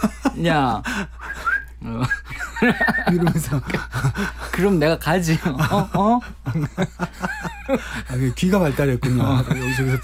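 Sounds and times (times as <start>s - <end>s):
laughter: 0.0s - 0.6s, 1.9s - 10.0s
speech: 0.0s - 1.2s, 1.8s - 10.0s
singer whistling a short melodic phrase: 1.2s - 2.4s.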